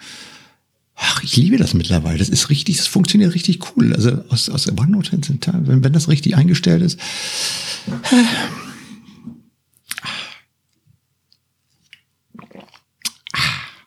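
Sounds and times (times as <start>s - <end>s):
speech: 1.3s - 8.6s
person sipping a drink: 11.7s - 13.8s.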